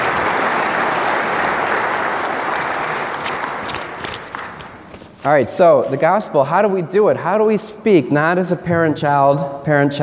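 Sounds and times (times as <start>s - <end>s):
audience applause for two volunteers: 0.0s - 4.9s
speech: 5.2s - 10.0s.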